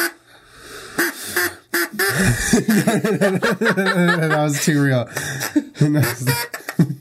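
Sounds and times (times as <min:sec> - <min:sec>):
hand-blown duck call quacking: 0:01.0 - 0:02.4, 0:05.8 - 0:06.8
laughter: 0:02.1 - 0:06.9
speech: 0:02.2 - 0:06.9.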